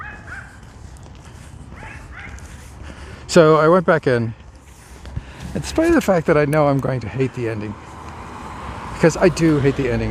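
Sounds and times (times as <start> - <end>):
small dog yapping behind a fence: 0.0 - 0.6, 1.8 - 2.4
speech: 3.3 - 4.4, 5.5 - 7.9, 9.0 - 10.0.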